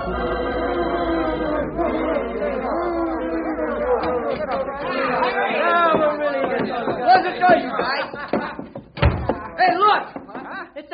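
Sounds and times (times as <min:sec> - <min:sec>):
laughter: 0:00.2 - 0:10.8
group of men talking noisily over one another: 0:01.3 - 0:08.3
sharp thump: 0:09.0 - 0:09.5.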